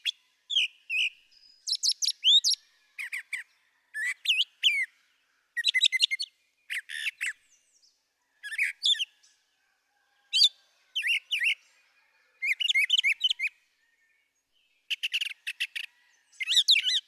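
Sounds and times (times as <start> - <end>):
brown thrasher song: 0.0 - 17.0.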